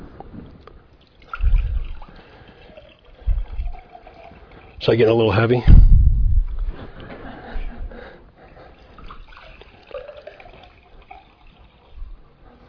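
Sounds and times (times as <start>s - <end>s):
water pouring and splashing into heavy glasses: 1.0s - 5.6s, 8.6s - 12.1s
speech: 4.8s - 5.9s.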